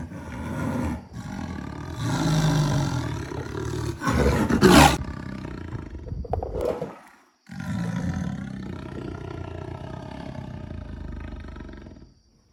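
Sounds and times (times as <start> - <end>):
jaguar: 0.0 - 12.3.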